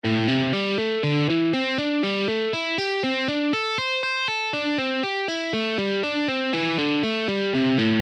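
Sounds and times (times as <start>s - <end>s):
pentatonic alternate picking exercises: 0.0s - 8.0s.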